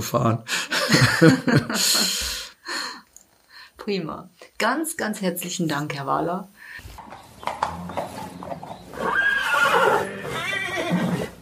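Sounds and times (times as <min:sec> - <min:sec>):
speech: 0:00.0 - 0:02.2, 0:03.9 - 0:08.0
laughter: 0:00.6 - 0:02.2
horse hooves clip-clopping on a hard surface: 0:06.8 - 0:11.3
horse neighing: 0:07.0 - 0:11.3.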